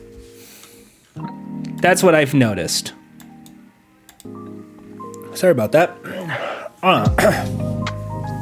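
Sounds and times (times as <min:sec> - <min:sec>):
speech: 0:01.2 - 0:03.0, 0:05.4 - 0:07.6
rough partly voiced throaty coughs: 0:06.1 - 0:07.6.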